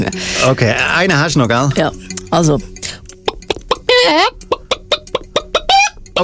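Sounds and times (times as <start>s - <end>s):
speech: 0.0s - 2.7s
chicken clucking: 3.2s - 6.1s
chicken drawn-out squawk: 3.9s - 6.0s.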